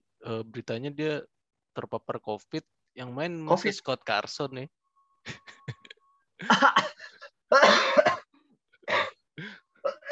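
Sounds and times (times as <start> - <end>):
speech: 0.2 - 5.7, 6.4 - 7.9
person coughing harshly: 6.4 - 8.3, 8.9 - 10.1.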